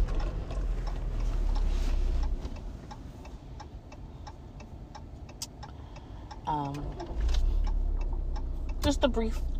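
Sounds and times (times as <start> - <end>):
car engine and road noise rumble: 0.0 - 9.5
car turn indicator ticking: 0.0 - 9.5
speech: 6.5 - 7.0, 8.9 - 9.5.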